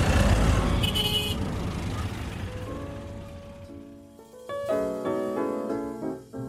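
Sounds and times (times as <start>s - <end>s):
engine rumble of busy street traffic in New Delhi: 0.0s - 4.4s
road noise of busy street traffic in New Delhi: 0.0s - 6.3s
overlapping car horns honking in New Delhi street traffic: 0.6s - 2.4s.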